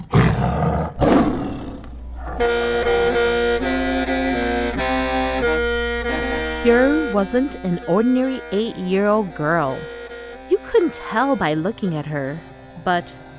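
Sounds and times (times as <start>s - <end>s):
tiger roaring: 0.0s - 5.4s
sustained musical passage with held tonal notes: 1.3s - 13.3s
speech: 2.4s - 2.7s, 6.6s - 10.0s, 10.7s - 13.2s.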